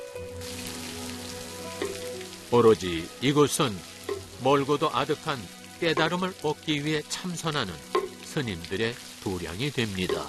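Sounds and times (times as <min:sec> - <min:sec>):
sudden rain falling at a mountain temple: 0:00.0 - 0:10.2
speech: 0:02.5 - 0:10.2.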